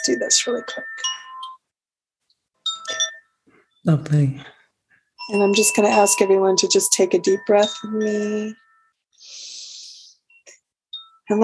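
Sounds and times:
speech: 0:00.0 - 0:01.1, 0:03.8 - 0:04.6, 0:05.3 - 0:08.6, 0:11.3 - 0:11.4
bright metallic chime struck at a guided breathing exercise: 0:00.0 - 0:01.6, 0:02.6 - 0:04.6, 0:05.2 - 0:09.0, 0:10.3 - 0:11.4.

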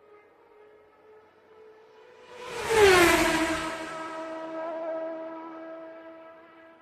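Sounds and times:
Formula One car engine screaming past: 0:02.2 - 0:06.2.

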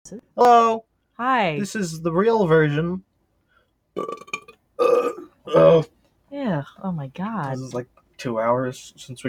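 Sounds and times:
speech: 0:00.1 - 0:03.1, 0:04.0 - 0:09.2
deep rumbling loud burps: 0:04.0 - 0:05.9.

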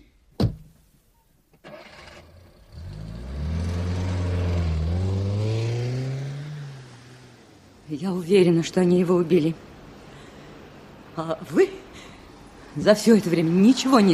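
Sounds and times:
sharp door-like thud: 0:00.4 - 0:00.8
taxi engine starting, revving and driving off: 0:01.7 - 0:07.8
speech: 0:07.9 - 0:09.7, 0:11.2 - 0:11.8, 0:12.8 - 0:14.1.

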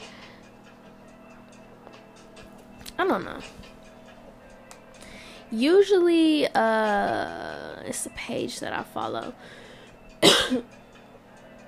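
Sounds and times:
speech: 0:03.0 - 0:03.8, 0:05.5 - 0:09.6, 0:10.5 - 0:10.8
person coughing: 0:10.2 - 0:10.7.

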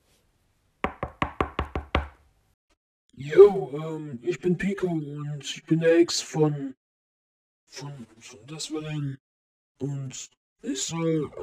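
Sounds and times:
knocking on a door: 0:00.8 - 0:02.2
speech: 0:03.2 - 0:06.8, 0:07.7 - 0:09.2, 0:09.8 - 0:11.4.

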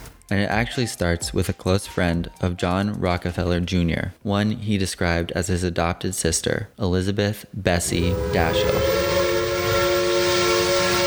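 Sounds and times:
speech: 0:00.3 - 0:09.2
train whistle blowing: 0:07.8 - 0:11.0.

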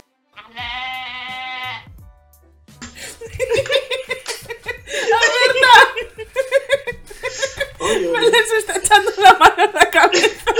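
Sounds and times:
goat bleating: 0:00.4 - 0:01.8
people laughing: 0:02.8 - 0:10.5.

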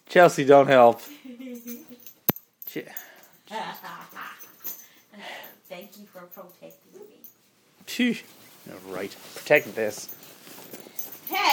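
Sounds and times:
speech: 0:00.1 - 0:01.2, 0:02.8 - 0:04.0, 0:07.9 - 0:10.2, 0:11.3 - 0:11.5
dog collar tags jingling: 0:01.0 - 0:07.5, 0:09.6 - 0:11.5.

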